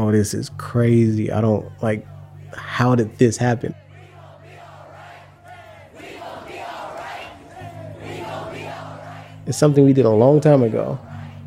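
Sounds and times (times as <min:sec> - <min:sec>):
speech: 0:00.0 - 0:03.8, 0:09.5 - 0:11.1
large protest crowd chanting a song outdoors: 0:03.7 - 0:11.4.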